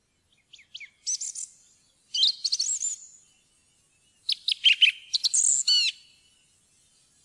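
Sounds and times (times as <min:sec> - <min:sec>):
song thrush singing clear whistled and chirpy high notes: 0:00.0 - 0:07.2.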